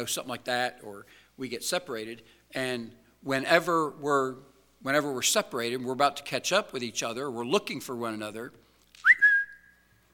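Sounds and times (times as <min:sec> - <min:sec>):
speech: 0:00.0 - 0:09.1
sharp human signal whistle: 0:09.0 - 0:10.0.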